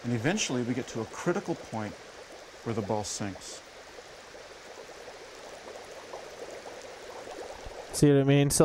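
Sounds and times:
speech: 0:00.0 - 0:03.7, 0:08.0 - 0:08.6
gas bubbles rising through water around a floating ball: 0:00.0 - 0:08.0.

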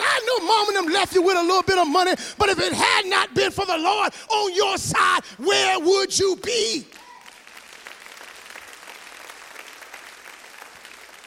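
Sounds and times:
speech: 0:00.5 - 0:07.0
crowd applauding: 0:06.9 - 0:11.2.

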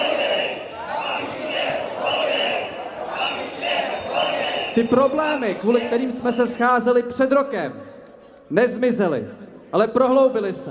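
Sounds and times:
large crowd of demonstrators roaring and cheering outdoors on Old Town Square: 0:00.0 - 0:06.8
speech: 0:04.8 - 0:07.9, 0:08.5 - 0:10.6.

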